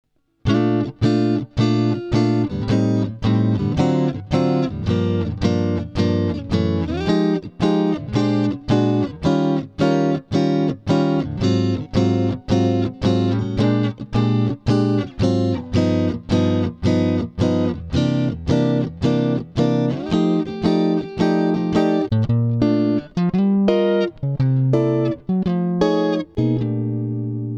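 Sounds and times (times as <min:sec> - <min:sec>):
blues jazz music: 0:00.5 - 0:27.5.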